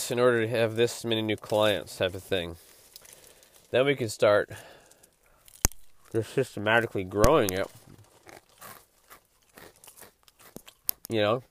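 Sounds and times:
speech: 0.1s - 2.7s, 3.7s - 4.7s, 6.1s - 7.8s, 11.1s - 11.4s
person chewing crunchy Cheerios cereal: 7.5s - 11.2s.

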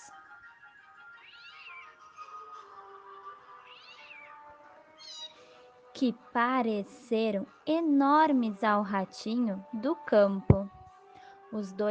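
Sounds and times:
cats meowing: 1.2s - 2.5s, 3.5s - 5.5s
speech: 6.0s - 10.6s, 11.5s - 11.8s.

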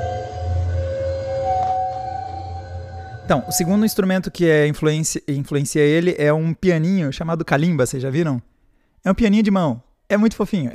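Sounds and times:
low rumbling hum: 0.0s - 4.3s
nail violin bowed with a violin bow: 0.0s - 4.4s
speech: 3.3s - 10.7s.

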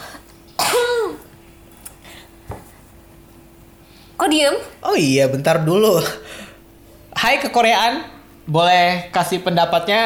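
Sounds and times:
cough: 0.6s - 1.3s
speech: 4.2s - 6.4s, 7.2s - 10.0s.

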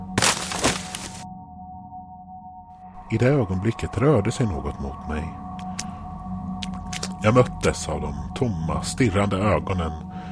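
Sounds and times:
crash of person tumbling down from a huge wooden nesting box: 0.2s - 1.2s
speech: 3.1s - 5.4s, 7.2s - 10.1s.

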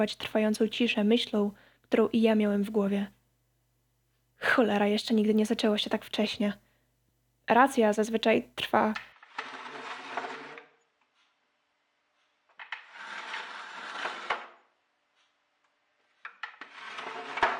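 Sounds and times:
speech: 0.0s - 3.2s, 4.4s - 6.6s, 7.5s - 9.5s
something dragged and scraping against a hard wooden surface: 9.2s - 10.8s, 12.6s - 14.6s, 16.3s - 17.5s.

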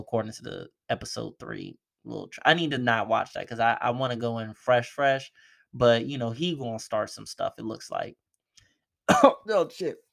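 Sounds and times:
speech: 0.0s - 8.2s, 9.1s - 10.0s
person coughing: 9.1s - 9.5s
throat clearing: 9.1s - 9.5s.

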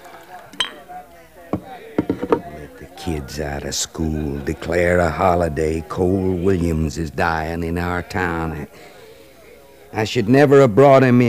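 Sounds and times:
faint murmuring voices of a celebrating crowd in a saloon: 0.0s - 11.2s
glass clinking: 0.6s - 0.9s
speech: 3.0s - 8.9s, 9.9s - 11.2s.

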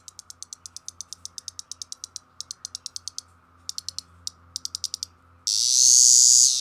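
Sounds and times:
Cassin's periodical cicada clicking and buzzing: 0.0s - 6.6s.

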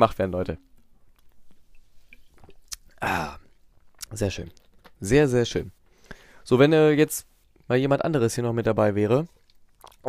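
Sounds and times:
speech: 0.0s - 0.7s, 4.1s - 5.8s, 6.4s - 9.4s
person sipping water from a sparkling-wine bottle: 0.8s - 5.0s, 9.3s - 10.0s.

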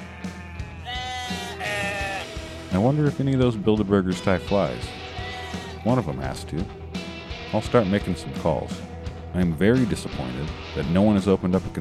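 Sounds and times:
sheep bleating: 0.0s - 2.8s, 4.8s - 5.9s
speech: 2.7s - 5.0s, 5.8s - 6.8s, 7.5s - 11.7s.

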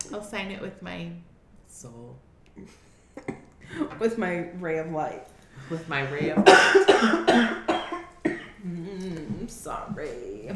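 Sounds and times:
speech: 0.1s - 7.7s, 8.6s - 10.5s
coughing: 3.2s - 3.6s, 6.4s - 8.8s.

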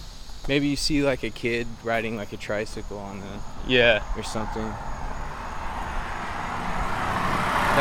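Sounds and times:
speech: 0.5s - 5.0s
car speeding along a street with engine and tire roar: 3.4s - 7.7s.

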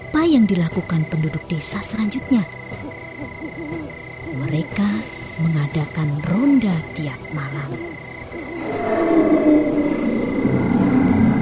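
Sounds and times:
speech: 0.3s - 8.0s
faint high whine: 4.3s - 11.3s
giant snake monster roaring: 8.4s - 11.3s.

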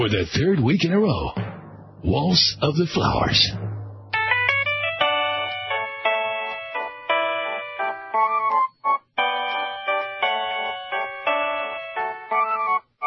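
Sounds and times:
speech: 0.0s - 1.4s, 2.0s - 3.7s
electronic mobile phone ringtone melody: 4.2s - 13.0s.

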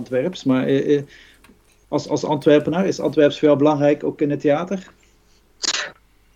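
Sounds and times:
speech: 0.0s - 1.3s, 1.9s - 5.0s
person sneezing: 5.6s - 6.0s.

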